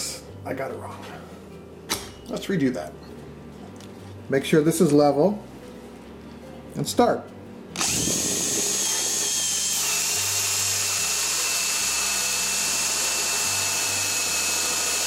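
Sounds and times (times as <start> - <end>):
speech: 0.4 - 1.3, 2.3 - 3.1, 4.3 - 5.5, 6.8 - 8.1
power drill boring a hole through a wooden door: 7.8 - 15.0.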